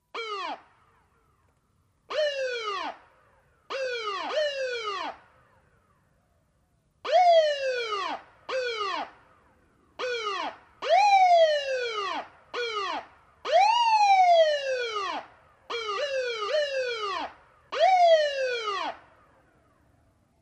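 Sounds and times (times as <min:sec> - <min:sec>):
ambulance wailer siren: 0:00.2 - 0:00.7, 0:03.7 - 0:05.2, 0:07.1 - 0:09.2, 0:10.0 - 0:19.7.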